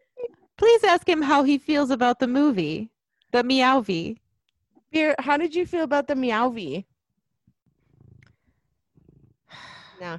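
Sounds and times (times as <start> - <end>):
speech: 0.8 - 4.2, 4.9 - 6.9, 9.5 - 10.1
male cat purring: 7.6 - 9.6.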